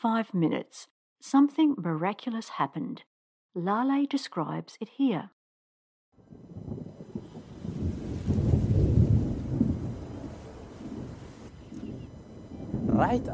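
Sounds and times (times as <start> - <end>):
speech: 0.0 - 5.4, 13.0 - 13.3
rain falling: 6.2 - 13.3
thunder rumbling: 6.2 - 13.3.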